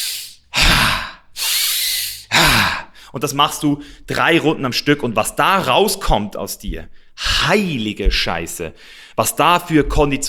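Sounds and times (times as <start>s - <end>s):
sharp forceful tantric breathing inhales: 0.0s - 3.2s, 6.9s - 7.8s, 8.8s - 9.2s
speech: 3.1s - 10.2s.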